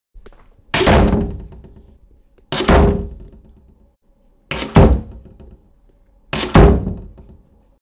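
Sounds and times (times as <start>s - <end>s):
door slamming: 0.7s - 1.9s, 2.5s - 3.6s, 4.5s - 5.6s, 6.3s - 7.4s.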